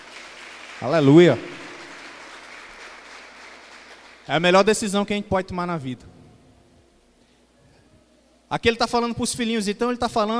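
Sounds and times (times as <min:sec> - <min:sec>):
crowd applauding: 0:00.0 - 0:04.3
speech: 0:00.8 - 0:01.5, 0:04.3 - 0:06.2, 0:08.5 - 0:10.3.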